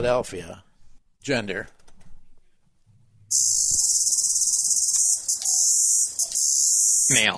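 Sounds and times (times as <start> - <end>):
speech: 0.0 - 1.8, 3.3 - 3.8, 7.1 - 7.3
male cicada calling on a drain pipe in Philadelphia: 3.3 - 7.2.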